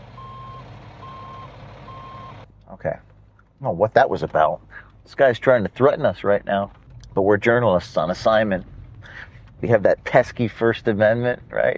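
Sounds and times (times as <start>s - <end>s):
low diesel engine rumble of a bus: 0.0s - 11.7s
bus reversing alarm beeping: 0.2s - 2.4s
speech: 2.7s - 11.7s.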